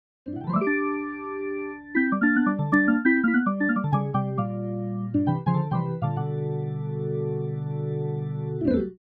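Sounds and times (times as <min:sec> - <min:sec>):
Hammond B3 organ playing slow jazz: 0:00.6 - 0:08.6.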